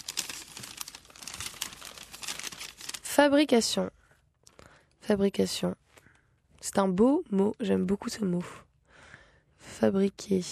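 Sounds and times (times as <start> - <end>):
slip of paper rustling and crinkling as it is unfolded: 0.0 - 3.2
speech: 3.2 - 4.0, 5.1 - 5.8, 6.6 - 8.6, 9.8 - 10.5.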